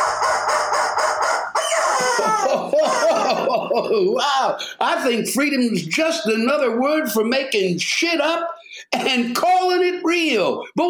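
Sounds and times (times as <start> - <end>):
rubber chicken toy squawking: 0.0 - 3.3
laughter: 2.0 - 5.1
speech: 3.5 - 10.8.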